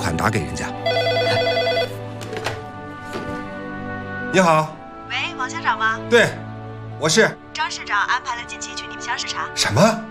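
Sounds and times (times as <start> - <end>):
speech: 0.1 - 0.7, 4.4 - 4.8, 5.4 - 6.4, 7.0 - 10.0
telephone bell ringing: 0.8 - 2.0.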